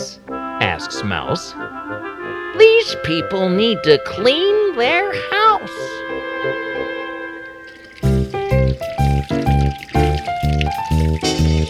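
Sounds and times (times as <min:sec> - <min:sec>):
soft steady tone: 0:00.0 - 0:08.9
speech: 0:00.6 - 0:06.6
water gurgling and bubbling like a filling container: 0:06.8 - 0:11.6.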